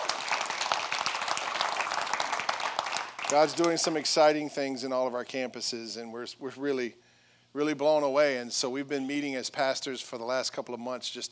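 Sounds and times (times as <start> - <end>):
large crowd applauding: 0.0 - 4.1
speech: 3.3 - 7.0, 7.6 - 11.3.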